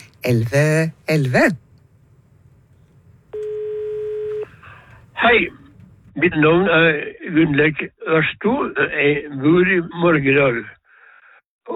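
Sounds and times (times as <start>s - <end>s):
faint low hum: 0.0s - 6.1s
speech: 0.2s - 1.6s, 5.2s - 5.6s, 6.2s - 10.8s
electronic ring tone of a call-in jukebox telephone: 3.4s - 4.5s.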